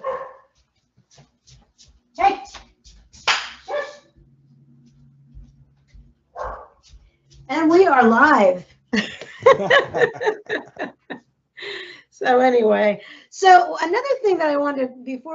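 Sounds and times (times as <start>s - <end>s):
dog barking: 0.0s - 0.6s, 3.7s - 4.1s, 6.4s - 6.8s
low indoor hum: 1.0s - 13.8s
speech: 7.9s - 11.0s, 12.2s - 15.3s
laughter: 9.0s - 11.2s.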